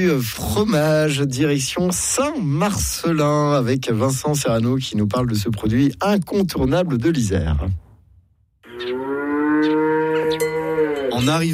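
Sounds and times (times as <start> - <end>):
speech: 0.0 - 7.8, 11.2 - 11.5
dairy cow mooing on a family farm in Isère France: 8.6 - 11.5
faint farmyard noises: 8.6 - 11.5.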